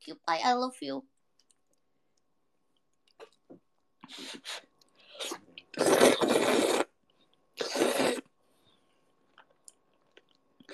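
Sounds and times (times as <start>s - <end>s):
speech: 0.0s - 1.1s, 4.1s - 4.6s
slurping of food: 4.0s - 7.0s, 7.6s - 8.3s.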